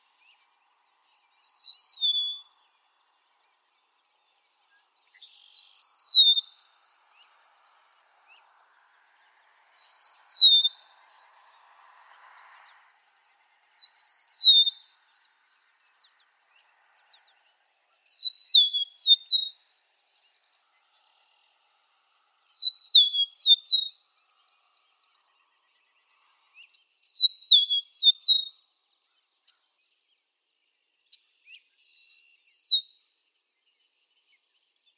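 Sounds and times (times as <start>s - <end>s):
meadowlark call: 0.0s - 7.4s, 9.8s - 11.7s, 13.8s - 21.0s, 22.3s - 29.6s, 31.1s - 33.1s.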